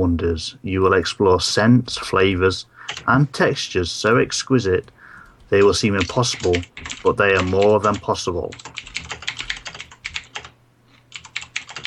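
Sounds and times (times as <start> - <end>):
speech: 0.0 - 8.7
typing on a mechanical keyboard: 2.9 - 3.1, 5.2 - 10.5, 11.1 - 11.8.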